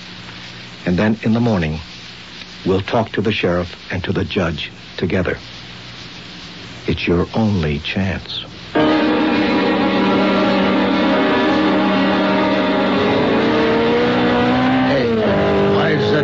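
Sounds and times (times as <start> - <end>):
speech: 0.8 - 1.9, 2.6 - 5.6, 6.9 - 8.9
sports car engine roaring past at high speed: 8.8 - 16.2.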